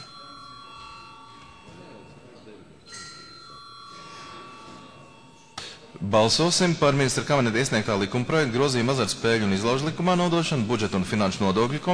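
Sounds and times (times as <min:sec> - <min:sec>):
parliament chamber electric bell ringing before vote: 0:00.0 - 0:05.6
low murmuring voices: 0:00.0 - 0:11.9
speech: 0:06.0 - 0:11.9.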